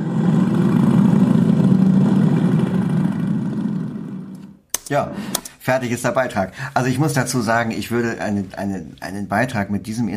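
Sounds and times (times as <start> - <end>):
several motorcycle engines starting and revving: 0.0 - 4.6
speech: 4.9 - 10.1.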